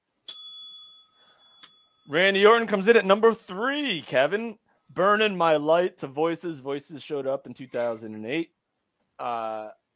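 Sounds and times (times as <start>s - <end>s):
bright bicycle-style bell ringing: 0.3s - 2.1s
speech: 2.1s - 8.6s, 9.2s - 9.9s.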